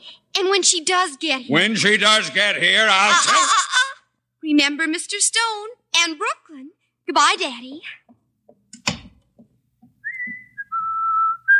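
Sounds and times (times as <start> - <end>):
speech: 0.4 - 3.7, 4.4 - 8.1
laughter: 2.8 - 4.0
soft thumps: 8.1 - 10.7
person whistling a tune in a school hallway outside an office: 10.0 - 11.5.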